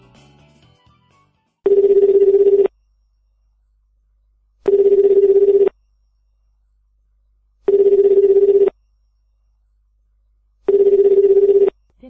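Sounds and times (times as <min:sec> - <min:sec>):
telephone ringback tone during an outgoing call: 0:01.7 - 0:02.7, 0:04.7 - 0:05.7, 0:07.7 - 0:08.8, 0:10.7 - 0:11.8.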